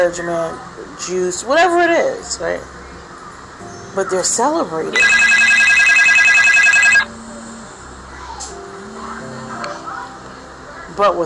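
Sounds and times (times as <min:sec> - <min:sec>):
speech: 0:00.0 - 0:02.8, 0:04.0 - 0:05.4, 0:11.0 - 0:11.2
loud bright telephone ringing: 0:05.0 - 0:07.1.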